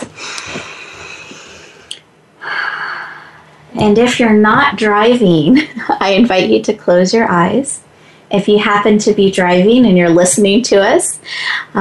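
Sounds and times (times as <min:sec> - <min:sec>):
group taking a deep breath together: 0:00.1 - 0:03.6
speech: 0:03.8 - 0:11.7.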